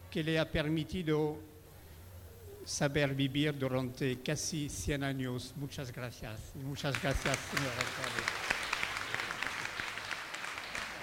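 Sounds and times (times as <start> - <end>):
speech: 0.1 - 1.5, 2.6 - 8.5
people applauding in an assembly hall: 6.9 - 11.0.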